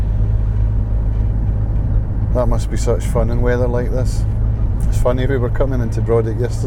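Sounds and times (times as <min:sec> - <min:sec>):
motorcycle engine rumbling as it passes: 0:00.0 - 0:06.6
speech: 0:02.4 - 0:06.6.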